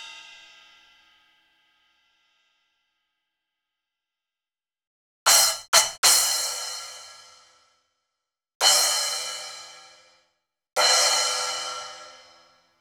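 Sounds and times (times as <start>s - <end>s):
sliced cymbals on a keyboard: 5.3s - 7.5s, 8.6s - 10.0s, 10.8s - 12.5s.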